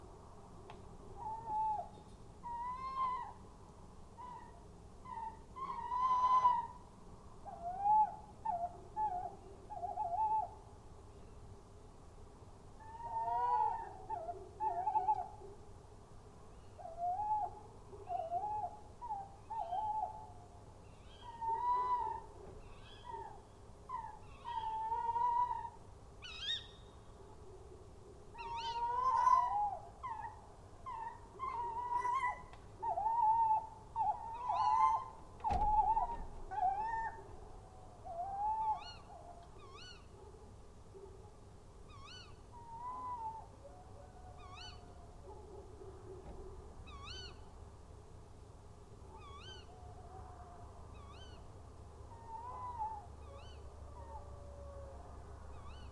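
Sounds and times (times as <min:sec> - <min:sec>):
tawny owl calling: 0:01.2 - 0:03.4, 0:04.2 - 0:06.8, 0:07.4 - 0:10.6, 0:12.8 - 0:15.4, 0:16.6 - 0:27.0, 0:28.3 - 0:40.1, 0:41.9 - 0:45.0, 0:46.9 - 0:47.5, 0:49.1 - 0:51.5, 0:52.1 - 0:55.9.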